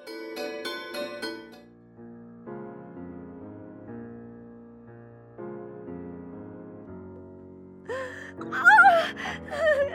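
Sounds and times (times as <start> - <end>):
quiet sustained music: 0.0 - 9.9
child gasping in panicked breaths: 7.9 - 9.9.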